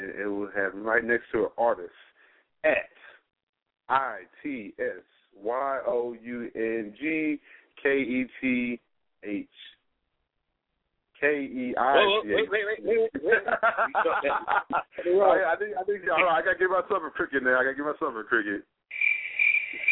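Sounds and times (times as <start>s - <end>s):
speech: 0.6s - 3.0s, 3.9s - 9.7s, 11.2s - 19.0s, 19.7s - 19.9s
laughter: 12.9s - 15.2s
crickets chirping: 18.9s - 19.9s.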